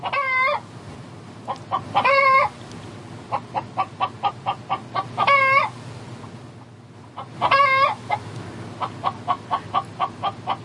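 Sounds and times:
chickens clucking: 0.0s - 0.6s, 1.4s - 2.7s, 3.3s - 6.4s, 7.0s - 10.6s
chicken strained harmonic calls: 0.0s - 0.7s, 1.5s - 2.6s, 3.3s - 5.8s, 7.1s - 10.6s.

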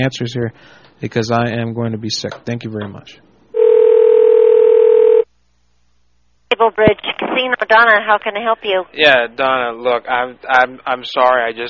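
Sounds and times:
speech: 0.0s - 3.3s, 6.6s - 11.6s
telephone dial tone: 3.6s - 5.3s.

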